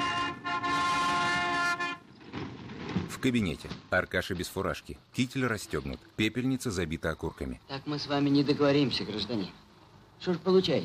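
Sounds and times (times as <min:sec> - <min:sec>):
ambulance van horn honking while speeding through the city: 0:00.0 - 0:02.2
speech: 0:03.2 - 0:09.6, 0:10.2 - 0:10.8.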